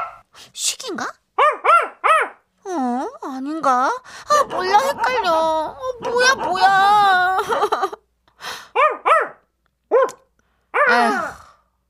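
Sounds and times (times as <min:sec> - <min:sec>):
dog barking at night: 0:00.0 - 0:00.2, 0:01.4 - 0:02.4, 0:04.3 - 0:07.0, 0:08.8 - 0:11.3
speech: 0:00.4 - 0:01.2
laughter: 0:04.2 - 0:08.0.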